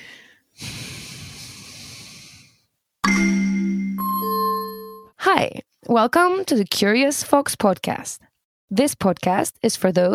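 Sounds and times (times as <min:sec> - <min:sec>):
harsh snorting breath from a backwards breathing technique: 0:00.0 - 0:02.7
bright tonal music: 0:03.0 - 0:05.1
speech: 0:05.3 - 0:10.1.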